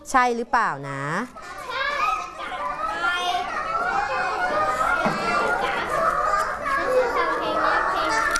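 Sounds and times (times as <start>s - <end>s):
many children chattering and shouting during a class activity: 0.0s - 8.3s
speech: 0.1s - 1.6s.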